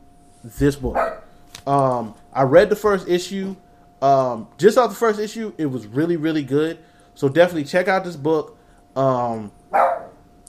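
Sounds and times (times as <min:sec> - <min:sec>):
speech: 0:00.4 - 0:09.9
dog barking: 0:01.0 - 0:01.3, 0:09.8 - 0:10.2.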